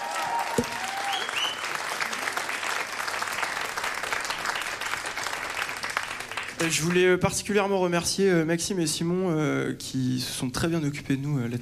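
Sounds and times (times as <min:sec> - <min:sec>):
large concert audience applause after band introductions: 0:00.0 - 0:07.0
whistles from concert audience: 0:00.5 - 0:01.7
speech: 0:06.6 - 0:11.6.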